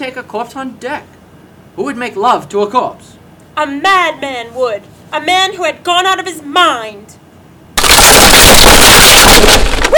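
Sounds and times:
speech: 0.0 - 1.2, 1.8 - 7.2, 8.0 - 9.9
ship's foremast breaking in a storm with splintering crash: 7.8 - 9.9.

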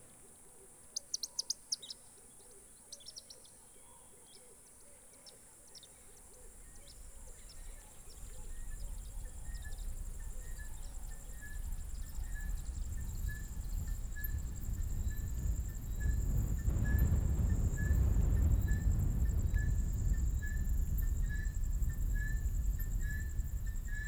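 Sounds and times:
steady high insect whine in a South African reserve: 6.6 - 24.0
low rumble: 8.1 - 24.0.

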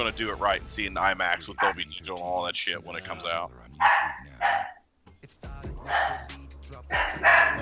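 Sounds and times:
speech: 0.0 - 4.7, 5.3 - 7.6
dog barking with harsh strained edge: 1.6 - 1.8, 3.8 - 4.8, 5.8 - 6.3, 6.9 - 7.6.

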